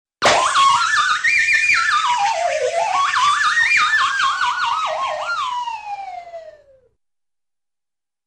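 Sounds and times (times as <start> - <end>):
balloon popping: 0.2 - 1.1
funny whistley air release from balloon: 0.2 - 6.8.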